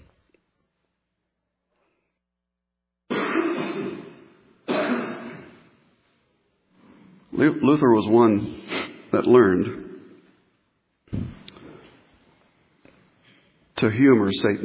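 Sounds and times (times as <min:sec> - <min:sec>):
loud rough coughs: 0:03.1 - 0:05.7
speech: 0:07.4 - 0:09.8, 0:13.8 - 0:14.6.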